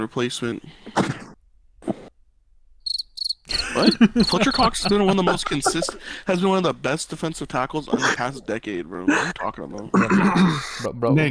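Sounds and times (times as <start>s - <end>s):
speech: 0.0s - 1.2s, 3.8s - 11.3s
crickets chirping: 2.8s - 6.2s
laughter: 3.5s - 10.9s.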